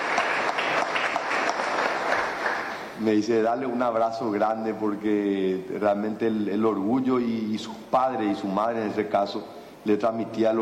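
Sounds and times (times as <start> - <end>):
audience applause: 0.0 - 2.9
speech: 3.0 - 10.6.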